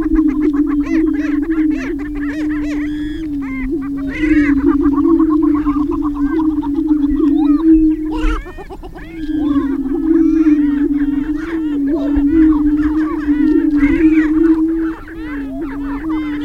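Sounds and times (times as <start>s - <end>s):
greater prairie chicken cackles and whoops: 0.0s - 16.4s
greater prairie chickens booming: 0.0s - 16.4s.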